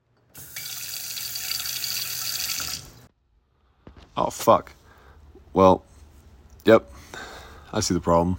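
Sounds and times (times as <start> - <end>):
tap water gushing into a sink: 0.4 - 3.0
speech: 4.2 - 4.8, 5.5 - 5.9, 6.6 - 6.9, 7.7 - 8.3.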